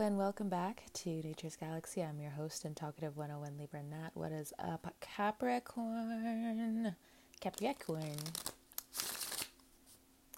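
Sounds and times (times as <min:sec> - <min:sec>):
speech: 0:00.0 - 0:09.1
deck of tarot cards riffle shuffled: 0:07.4 - 0:10.3.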